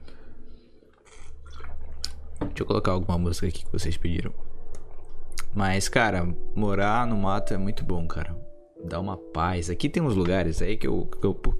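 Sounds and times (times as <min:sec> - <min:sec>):
person sipping water with slurping and swallowing: 0:00.8 - 0:02.6
speech: 0:02.6 - 0:04.5, 0:05.5 - 0:11.5.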